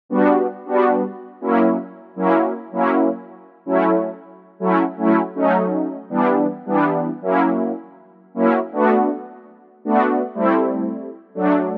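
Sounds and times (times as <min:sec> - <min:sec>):
synth brass: 0:00.1 - 0:11.7.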